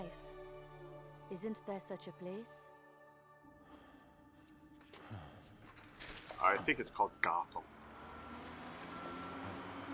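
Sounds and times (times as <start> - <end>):
speech: 1.3 - 2.7, 6.4 - 7.8
trash truck reversing beeper: 7.6 - 9.9.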